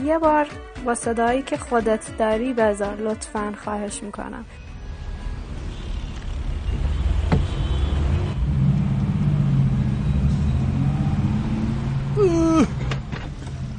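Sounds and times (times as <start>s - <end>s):
speech: 0.0s - 4.6s, 12.2s - 12.8s
street traffic with engines idling and moving: 4.2s - 13.7s.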